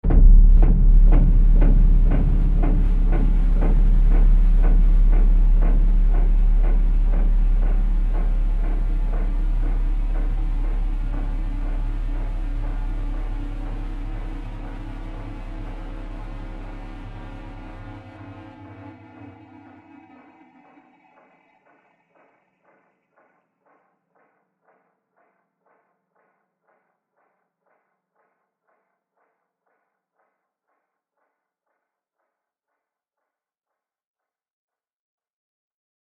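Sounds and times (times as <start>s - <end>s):
deep digital impact stab with resonant echoes: 0.0s - 21.0s.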